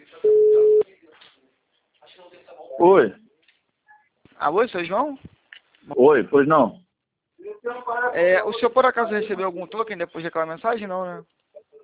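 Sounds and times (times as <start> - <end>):
faint noise: 0.0 - 11.8
single steady electronic telephone tone as a call is placed: 0.2 - 0.8
speech: 2.8 - 3.2, 4.4 - 5.3, 5.9 - 6.8, 7.6 - 11.4.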